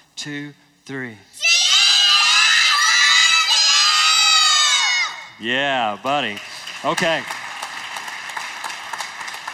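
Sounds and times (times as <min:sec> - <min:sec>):
speech: 0:00.2 - 0:01.5, 0:05.4 - 0:07.4
large group of children shouting together: 0:01.4 - 0:05.3.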